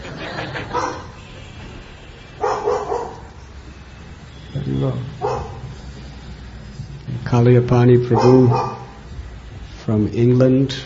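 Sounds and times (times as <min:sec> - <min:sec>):
laughter: 0:00.0 - 0:01.3
dog barking: 0:00.7 - 0:01.2, 0:02.4 - 0:03.4, 0:05.2 - 0:05.7, 0:08.1 - 0:09.0
speech: 0:04.7 - 0:05.2, 0:07.3 - 0:08.7, 0:09.9 - 0:10.8.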